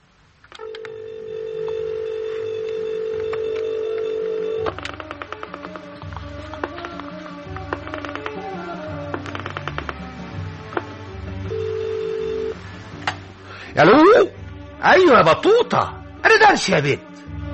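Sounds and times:
telephone dialing clicks and tones: 0:00.5 - 0:08.4
telephone dial tone: 0:00.6 - 0:05.0, 0:11.5 - 0:12.6
speech: 0:13.8 - 0:17.0.

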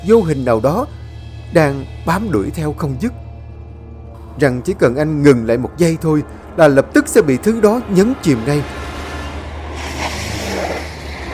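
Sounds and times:
speech: 0:00.0 - 0:03.2, 0:04.4 - 0:08.8
car engine roaring: 0:00.9 - 0:11.3
car tyres screeching to a sudden stop: 0:04.7 - 0:11.3.

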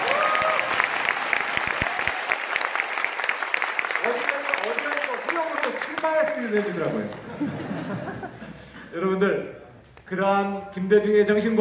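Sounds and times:
audience applause at a political speech: 0:00.0 - 0:08.2
speech: 0:06.0 - 0:11.5.

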